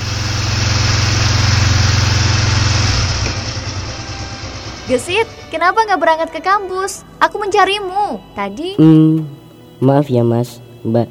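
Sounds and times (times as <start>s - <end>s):
motorcycle engine growling: 0.0s - 7.1s
speech: 4.9s - 11.0s.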